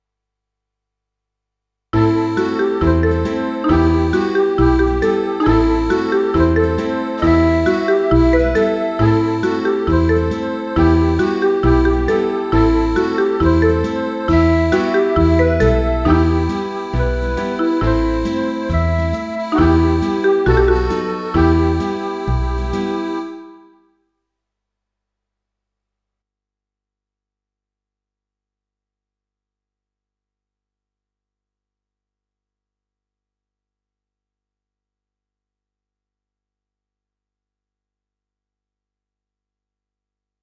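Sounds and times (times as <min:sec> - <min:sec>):
folk riff in E minor: 0:02.0 - 0:23.8.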